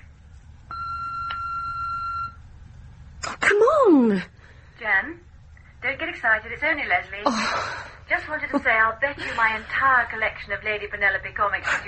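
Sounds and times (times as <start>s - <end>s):
answering machine beep tone: 0.7s - 2.4s
speech: 3.2s - 11.8s.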